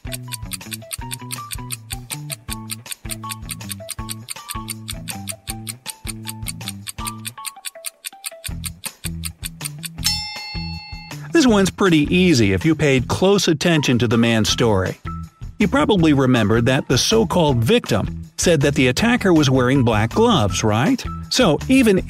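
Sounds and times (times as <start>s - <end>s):
clock ticking as a countdown: 0.0s - 10.1s
speech: 11.4s - 15.0s, 15.6s - 22.0s.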